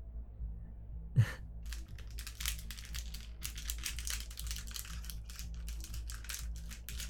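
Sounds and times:
low steady hum: 0:00.0 - 0:07.0
paper slip rustling, pulled from a bowl: 0:01.7 - 0:07.0.

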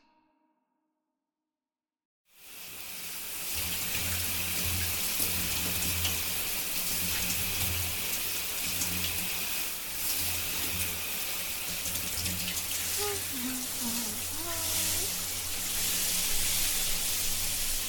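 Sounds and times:
shower spraying water on hair and skin: 0:02.4 - 0:17.8.

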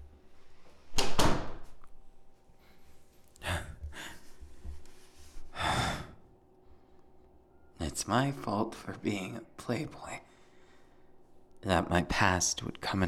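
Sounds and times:
door bumping shut: 0:01.0 - 0:01.7
speech: 0:08.0 - 0:10.2, 0:11.6 - 0:13.0.

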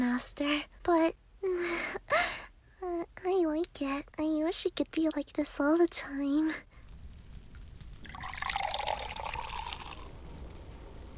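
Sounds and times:
speech: 0:00.2 - 0:02.4, 0:03.2 - 0:06.7
water poured from pails into a partly filled bathtub: 0:08.0 - 0:10.1.

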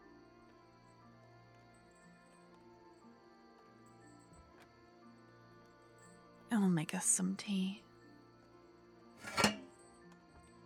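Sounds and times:
speech: 0:06.5 - 0:07.8
faint metallic ring of a kettle: 0:09.2 - 0:09.8
kettle set down over a fireplace with metallic clunk: 0:09.2 - 0:09.8.

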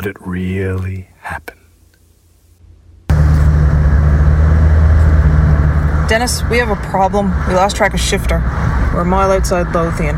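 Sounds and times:
speech: 0:00.0 - 0:01.6, 0:06.1 - 0:10.1
van engine hum and road rumble from inside the moving vehicle: 0:02.6 - 0:10.1.

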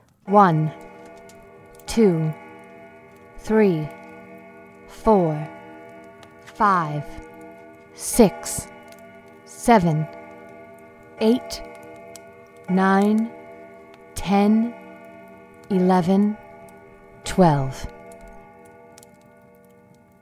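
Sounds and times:
grandfather clock chiming: 0:00.2 - 0:20.2
speech: 0:00.3 - 0:00.8, 0:02.0 - 0:02.4, 0:03.4 - 0:04.0, 0:05.0 - 0:05.6, 0:06.6 - 0:07.3, 0:08.0 - 0:08.7, 0:09.6 - 0:10.2, 0:11.2 - 0:11.7, 0:12.7 - 0:13.4, 0:14.2 - 0:14.8, 0:15.7 - 0:16.4, 0:17.2 - 0:18.0.

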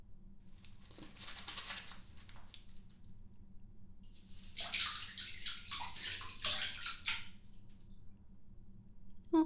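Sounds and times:
bath water splashing and sloshing in a tub: 0:04.2 - 0:07.5.

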